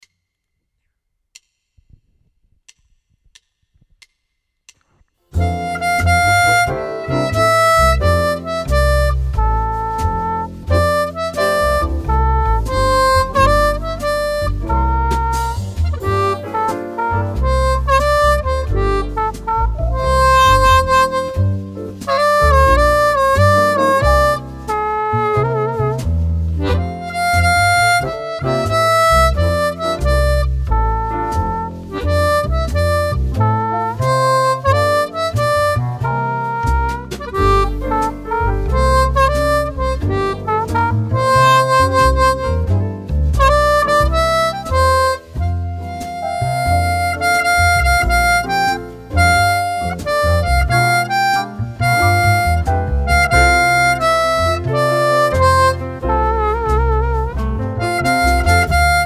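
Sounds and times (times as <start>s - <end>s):
harp: 5.4s - 59.0s.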